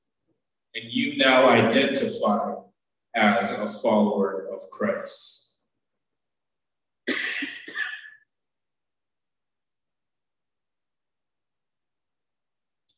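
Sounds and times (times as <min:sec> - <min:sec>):
speech: 0:00.8 - 0:05.4
loud cough: 0:07.0 - 0:08.3.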